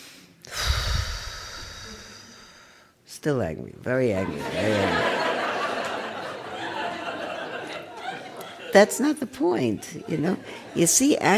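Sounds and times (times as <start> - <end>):
person breathing slowly during a meditation teaching: 0.0 - 3.0
speech: 3.2 - 5.3, 8.7 - 11.3
laughter: 4.2 - 11.3.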